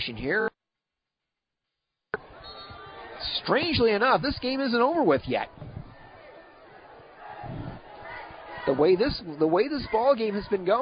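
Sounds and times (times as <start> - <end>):
speech: 0.0 - 0.5, 3.4 - 5.7, 8.7 - 10.7
large homecoming football crowd cheering: 2.2 - 10.7.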